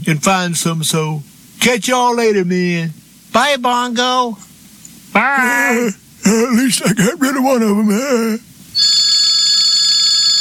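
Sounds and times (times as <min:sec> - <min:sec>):
speech: 0:00.1 - 0:04.5, 0:05.1 - 0:09.0
telephone ringing with electronic trill: 0:08.8 - 0:10.3.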